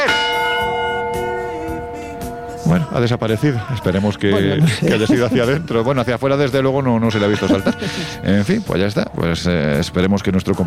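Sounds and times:
large church bell ringing: 0.0s - 6.3s, 7.0s - 9.0s
speech: 2.7s - 10.6s
laughter: 3.8s - 6.0s, 7.1s - 8.5s.

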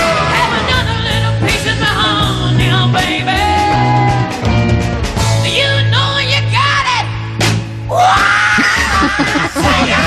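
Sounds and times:
rock music with driving bass and distorted guitars: 0.0s - 10.0s
female rock singer screaming in recorded song: 7.9s - 10.0s
laughter: 8.6s - 10.0s.

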